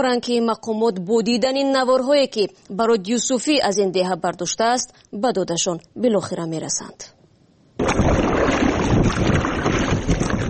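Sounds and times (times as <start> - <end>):
speech: 0.0 - 7.2
wind on the Kofarnihon river near Shirkhoni village: 6.0 - 10.4
rubber passenger boat crossing the Kofarnihon river, rushing water: 7.8 - 10.4.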